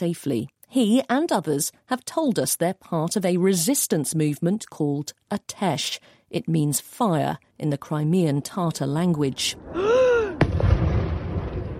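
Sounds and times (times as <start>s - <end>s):
speech: 0.0s - 10.0s
woman crying out: 9.8s - 10.4s
explosion during an attack on two warships in Sevastopol, Crimea: 10.4s - 11.7s.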